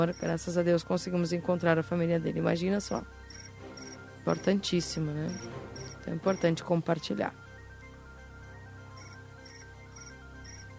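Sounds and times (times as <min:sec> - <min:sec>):
crickets chirping: 0:00.0 - 0:00.4, 0:02.9 - 0:04.5, 0:05.3 - 0:06.5, 0:08.9 - 0:10.7
speech: 0:00.0 - 0:03.3, 0:04.2 - 0:07.4
low steady hum: 0:00.0 - 0:10.7.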